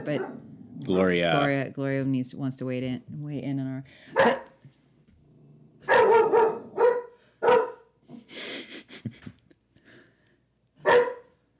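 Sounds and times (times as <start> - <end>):
big 70-pound puppy barking: 0.0 - 0.4, 4.1 - 4.6, 5.8 - 7.9, 10.8 - 11.3
speech: 0.0 - 4.5.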